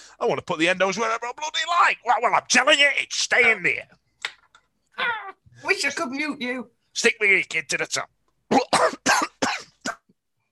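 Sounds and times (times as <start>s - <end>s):
speech: 0.2s - 4.0s, 5.0s - 8.8s
coughing fit: 8.5s - 10.2s.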